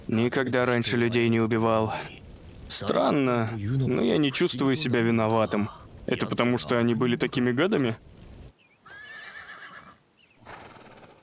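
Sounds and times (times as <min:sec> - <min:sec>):
speech: 0:00.1 - 0:08.1
horse whinnying with a wavering high-pitched neigh: 0:08.8 - 0:11.2.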